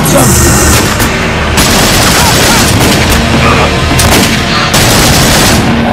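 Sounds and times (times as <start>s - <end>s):
speech: 0.1s - 0.6s
rapid gunfire in a street shootout between police and armed gunmen: 1.5s - 3.3s, 4.0s - 5.8s.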